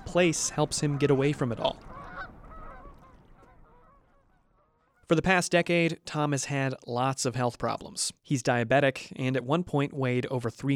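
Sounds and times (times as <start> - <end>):
geese honking at a pond: 0.0 - 5.1
speech: 0.1 - 1.8, 5.1 - 10.7.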